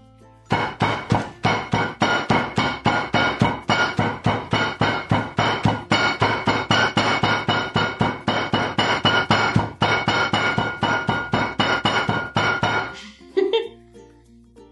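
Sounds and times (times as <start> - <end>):
hammer pounding coffee beans in a bag between towels: 0.5 - 13.0.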